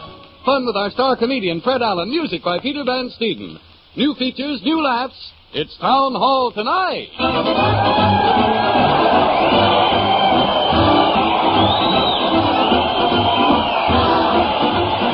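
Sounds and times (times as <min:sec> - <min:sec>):
speech: 0:00.5 - 0:10.0
large crowd cheering and shouting: 0:07.2 - 0:15.1
whoops: 0:07.6 - 0:15.1.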